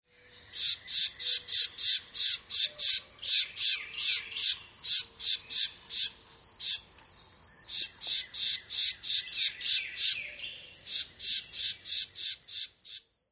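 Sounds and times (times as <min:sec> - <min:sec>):
Carolina wren alarm call: 0:00.1 - 0:13.1.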